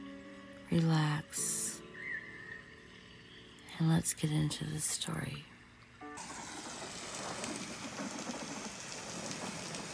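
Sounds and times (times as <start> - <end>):
speech: 0.7 - 1.6, 3.8 - 5.5
rain falling on a surface: 6.2 - 9.9.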